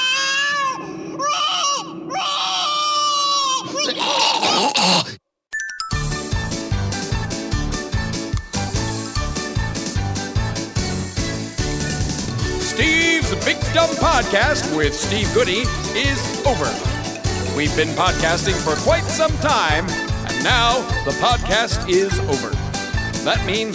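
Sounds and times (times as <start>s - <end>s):
child screaming and crying in shrill wavering wails: 0.0s - 4.8s
beat-driven music track: 5.5s - 22.0s
speech: 14.2s - 16.9s, 17.6s - 22.6s, 23.2s - 23.7s.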